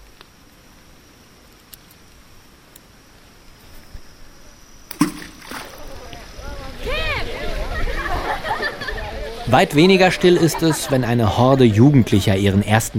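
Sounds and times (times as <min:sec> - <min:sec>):
ringing plops and sloshes in gorge water: 0:04.9 - 0:05.8
stones thrown by hand splashing into water of a gorge in Western Australia: 0:04.9 - 0:06.0
laughter: 0:06.9 - 0:11.6
speech: 0:09.5 - 0:12.9.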